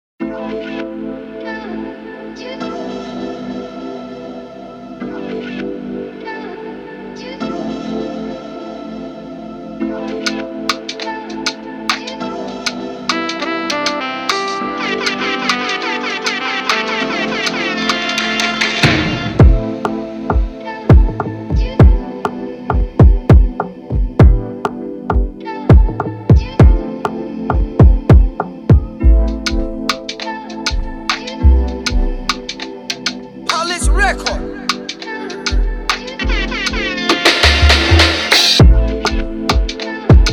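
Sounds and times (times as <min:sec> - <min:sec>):
ambient afrobeat instrumental intro: 0:09.8 - 0:40.3.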